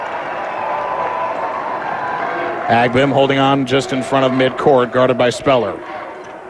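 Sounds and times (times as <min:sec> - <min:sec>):
basketball fans clapping and cheering: 0:00.0 - 0:05.2
large basketball arena crowd roaring: 0:00.0 - 0:06.4
speech: 0:02.7 - 0:06.0.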